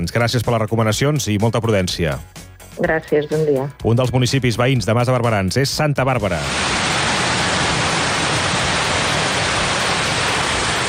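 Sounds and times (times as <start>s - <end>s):
speech: 0.0s - 6.9s
floodwater rushing down a town street: 6.5s - 10.8s.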